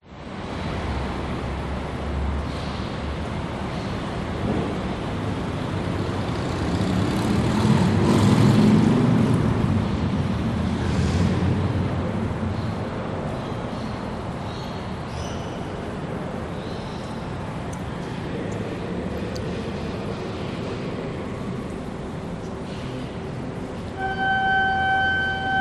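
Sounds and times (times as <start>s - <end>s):
traffic outside a cathedral in Sydney: 0.0s - 25.5s
cathedral interior ambience in Sydney: 15.8s - 25.5s.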